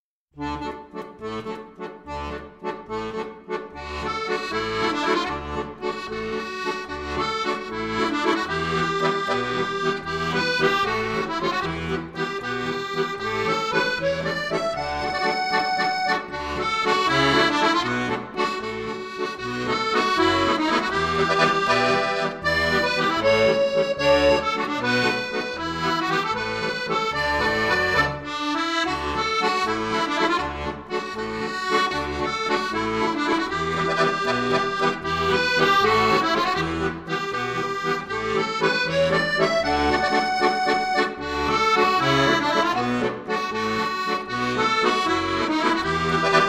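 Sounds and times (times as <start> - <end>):
accordion: 0.4 - 46.4.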